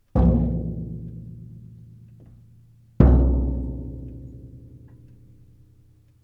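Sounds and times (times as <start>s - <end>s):
bass drum: 0.2s - 2.4s, 3.0s - 4.7s.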